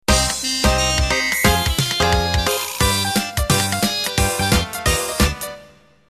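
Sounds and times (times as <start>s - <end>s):
flapper music intro: 0.0s - 5.8s.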